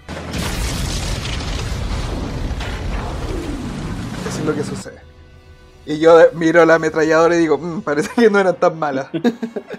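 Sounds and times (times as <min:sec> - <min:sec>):
fuel tank explosion: 0:00.0 - 0:05.0
speech: 0:04.3 - 0:05.1, 0:05.8 - 0:09.7
laughter: 0:09.1 - 0:09.7.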